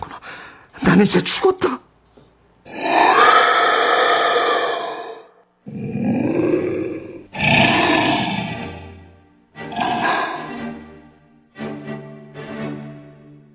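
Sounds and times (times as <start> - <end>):
speech: 1.0 - 1.8
monster letting out long loud guttural roars: 2.7 - 9.0, 9.6 - 10.8.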